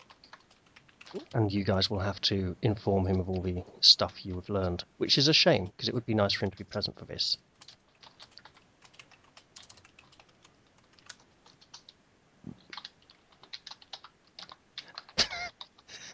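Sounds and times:
typing on a computer keyboard: 0:00.0 - 0:01.4, 0:03.1 - 0:04.3, 0:07.6 - 0:12.0, 0:12.6 - 0:16.0
speech: 0:01.1 - 0:07.5.

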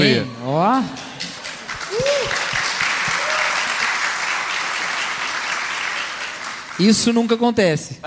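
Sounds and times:
speech: 0:00.2 - 0:01.0, 0:06.8 - 0:08.0
crowd applause: 0:01.0 - 0:07.3.

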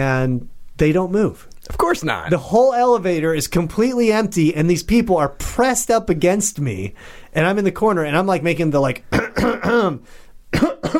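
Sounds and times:
speech: 0:00.0 - 0:10.9
person in an elevator imitating coughing: 0:09.1 - 0:10.9.

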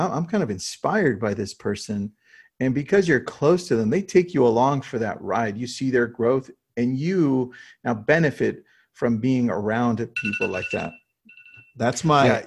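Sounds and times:
speech: 0:00.0 - 0:11.0, 0:11.8 - 0:12.4
phone alarm ringing with a repeating electronic tone: 0:10.1 - 0:11.9.

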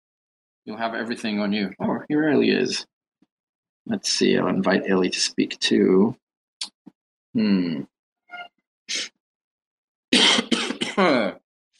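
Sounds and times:
speech: 0:00.7 - 0:02.9, 0:03.9 - 0:06.2, 0:07.4 - 0:07.9, 0:08.9 - 0:09.1, 0:11.0 - 0:11.4
person clearing their throat: 0:07.4 - 0:07.8, 0:10.2 - 0:11.4
person coughing in short rough hacking bursts: 0:10.2 - 0:11.4.

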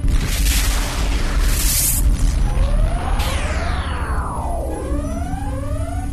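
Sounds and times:
methane-fueled bomb explosion from a spaceship's cargo: 0:00.0 - 0:06.1
eerie sweeping tones: 0:02.4 - 0:06.1.

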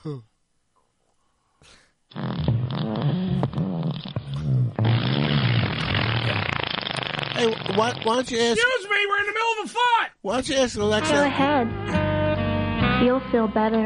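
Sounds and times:
speech: 0:00.0 - 0:00.3, 0:01.6 - 0:02.6, 0:07.4 - 0:12.0, 0:13.0 - 0:13.8
fart sound effect from a smart speaker: 0:02.1 - 0:08.2.

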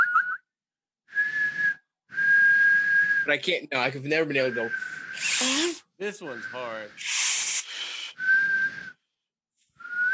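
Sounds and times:
person whistling: 0:00.0 - 0:00.5, 0:01.1 - 0:03.3, 0:04.4 - 0:05.7, 0:06.3 - 0:09.0, 0:09.8 - 0:10.1
speech: 0:03.3 - 0:07.2.

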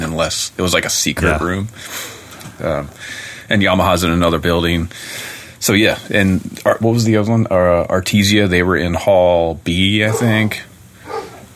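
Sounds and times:
faint steady hum: 0:00.0 - 0:11.5
speech: 0:00.2 - 0:10.7
female dog barking: 0:10.1 - 0:10.4, 0:11.0 - 0:11.5.

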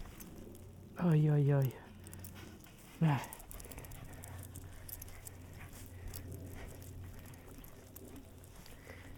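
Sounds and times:
constant low hum: 0:00.0 - 0:09.1
speech: 0:01.0 - 0:01.8, 0:03.0 - 0:03.4
excited wet dog panting: 0:01.9 - 0:09.1.

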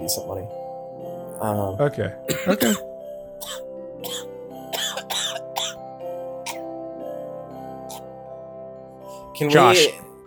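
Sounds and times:
speech: 0:00.1 - 0:00.6, 0:01.4 - 0:03.6, 0:09.4 - 0:10.0
person coughing: 0:02.3 - 0:02.8, 0:03.4 - 0:05.8, 0:09.5 - 0:09.9.

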